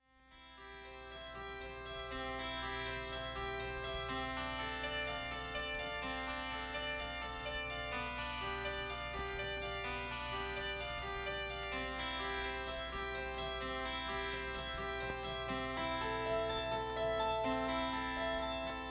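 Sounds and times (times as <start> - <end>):
keyboard piece in C major: 0.5 - 18.9.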